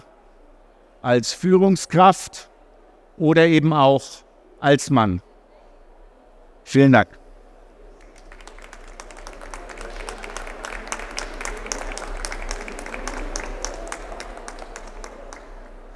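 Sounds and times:
speech: 0:01.0 - 0:02.5, 0:03.2 - 0:05.3, 0:06.6 - 0:07.2
room full of people applauding: 0:08.0 - 0:15.9.

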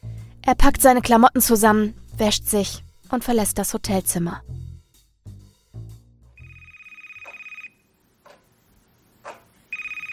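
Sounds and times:
speech: 0:00.5 - 0:04.6
telephone bell ringing: 0:06.4 - 0:07.8, 0:09.7 - 0:10.1.

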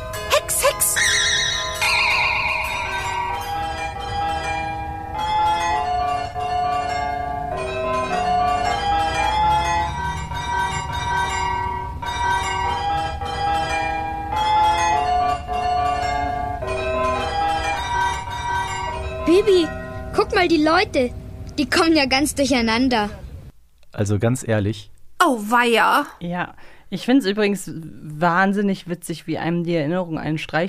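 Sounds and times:
carillon bells playing a children's song melody: 0:00.0 - 0:21.4
speech: 0:20.4 - 0:23.2, 0:24.0 - 0:30.6.

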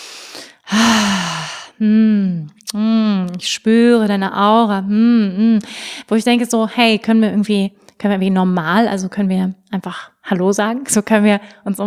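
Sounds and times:
person taking a brief noisy inhale: 0:00.0 - 0:01.8, 0:05.6 - 0:06.1
speech: 0:03.4 - 0:11.8.

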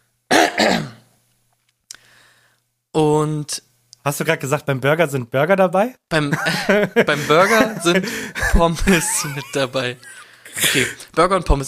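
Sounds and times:
person clearing throat: 0:00.3 - 0:01.1
faint breath: 0:02.0 - 0:02.7
speech: 0:03.0 - 0:11.6
laughter: 0:06.2 - 0:11.0.

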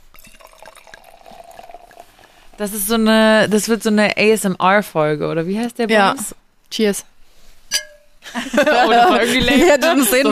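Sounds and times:
sparkling wine pouring fizzily into a glass: 0:00.1 - 0:02.8
speech: 0:02.6 - 0:07.1, 0:08.4 - 0:10.3
laughter: 0:08.2 - 0:10.3.

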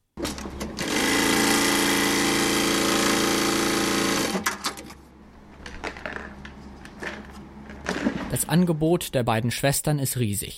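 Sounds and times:
sewing machine stitching: 0:00.2 - 0:05.0
workshop noises: 0:00.2 - 0:09.8
speech: 0:08.5 - 0:10.5.

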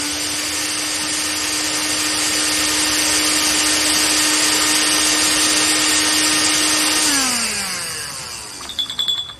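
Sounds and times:
immersion blender pureeing peeled pitted fruit pulp for sorbet: 0:00.0 - 0:09.3.

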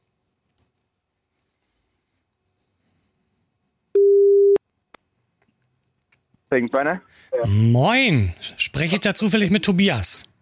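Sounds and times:
telephone busy-signal tones while calling someone: 0:04.0 - 0:04.6
speech: 0:06.5 - 0:10.3.

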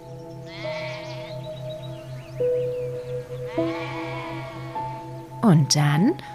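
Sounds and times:
lamb bleating: 0:00.5 - 0:01.4, 0:03.5 - 0:05.1
speech: 0:02.4 - 0:04.6, 0:05.4 - 0:06.3.

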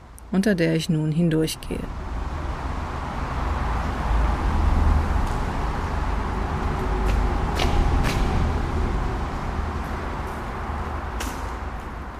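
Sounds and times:
motorway traffic roar heard from underneath the motorway: 0:00.0 - 0:12.1
speech: 0:00.3 - 0:02.1.

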